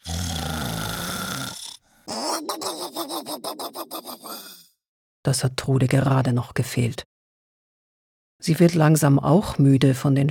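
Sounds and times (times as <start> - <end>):
loud raspy snoring: 0.0 - 2.1
laughter: 2.1 - 4.6
speech: 5.2 - 7.1, 8.4 - 10.2.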